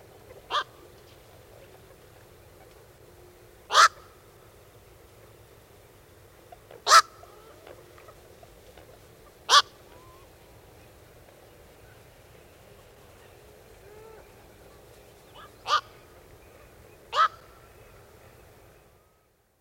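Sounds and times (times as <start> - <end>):
black-crowned night heron giving harsh low-pitched calls: 3.7 - 4.0, 6.8 - 7.4, 9.5 - 10.3, 15.3 - 16.1, 17.0 - 17.7.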